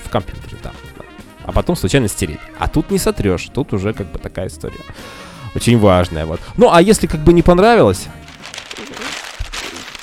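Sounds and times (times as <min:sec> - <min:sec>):
speech: 0:00.1 - 0:00.6, 0:01.5 - 0:08.2
paper being crumpled by hand: 0:08.1 - 0:10.0.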